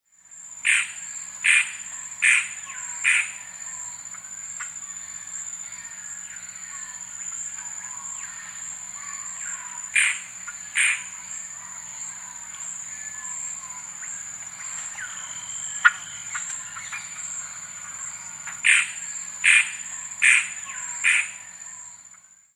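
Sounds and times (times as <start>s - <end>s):
Black-Bellied Gnateater in S. America: 0.6s - 3.9s, 7.6s - 21.8s.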